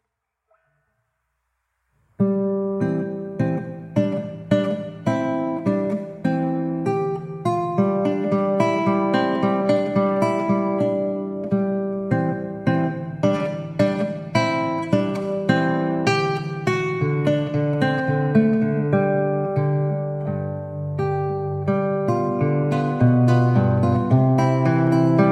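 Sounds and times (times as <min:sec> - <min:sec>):
acoustic guitar playing andante: 0:02.0 - 0:25.3.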